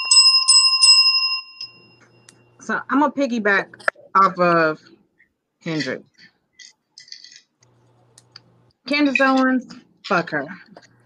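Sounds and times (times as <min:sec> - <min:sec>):
bright metallic bell ringing: 0:00.0 - 0:02.5
speech: 0:02.7 - 0:05.0, 0:05.6 - 0:06.8, 0:08.9 - 0:10.9.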